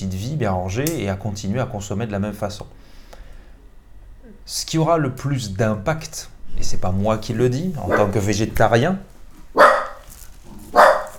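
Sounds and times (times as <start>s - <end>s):
speech: 0.0s - 3.0s, 4.5s - 9.7s
dog barking after hearing a noise: 7.8s - 8.3s, 9.5s - 10.1s, 10.7s - 11.1s.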